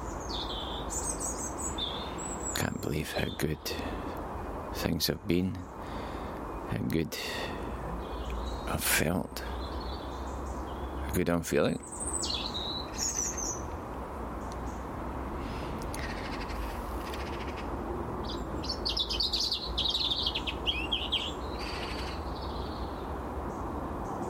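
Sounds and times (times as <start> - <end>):
birds chirping and calling: 0.0 - 24.2
steady outdoor hiss: 0.0 - 24.2
speech: 2.9 - 4.1, 4.8 - 5.8, 6.7 - 7.5, 8.7 - 9.5, 11.1 - 12.0.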